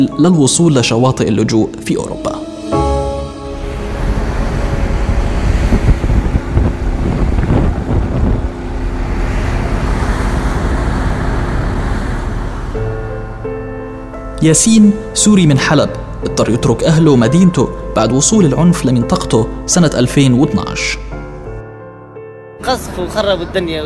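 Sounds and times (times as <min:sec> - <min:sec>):
speech: 0:00.0 - 0:02.4, 0:14.4 - 0:21.0, 0:22.7 - 0:23.8
water rushing beneath a ship on the Mediterranean Sea: 0:02.2 - 0:20.6
rescue ship engine hum: 0:03.0 - 0:20.6
strong wind buffeting the microphone aboard a search-and-rescue ship at sea: 0:03.4 - 0:18.8.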